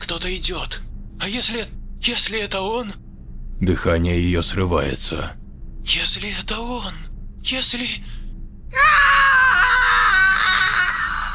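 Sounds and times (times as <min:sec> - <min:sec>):
speech: 0:00.2 - 0:03.0, 0:03.6 - 0:09.5
woman screaming wildly in a horror thriller: 0:08.8 - 0:11.3.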